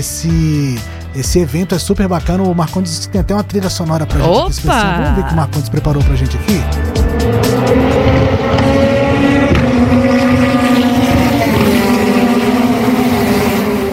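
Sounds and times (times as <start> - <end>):
speech: 0.0 - 7.5
TMC racing car engines roaring and revving: 6.8 - 13.9.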